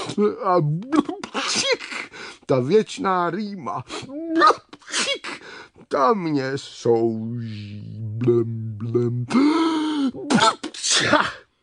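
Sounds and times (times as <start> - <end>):
speech: 0.1 - 1.8, 2.5 - 5.0, 5.8 - 11.4
person acting out a loud sneeze: 1.0 - 2.1, 4.4 - 5.5, 9.4 - 11.5.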